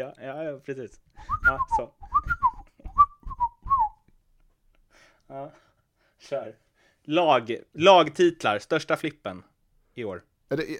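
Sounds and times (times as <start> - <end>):
speech: 0.0 - 2.4, 5.3 - 10.7
person whistling a short lilting tune: 1.2 - 4.0.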